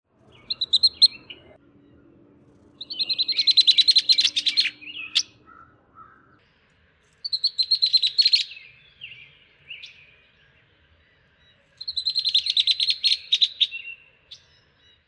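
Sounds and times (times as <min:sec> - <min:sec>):
female rusty blackbird chipping call: 0:00.3 - 0:02.0, 0:02.8 - 0:06.4, 0:07.2 - 0:10.2, 0:11.8 - 0:15.0.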